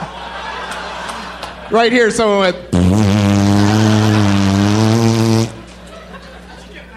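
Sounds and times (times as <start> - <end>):
laughter: 0.0 - 2.2, 5.5 - 6.9
speech: 1.7 - 3.1
person imitating an elephant trumpeting: 2.8 - 5.6.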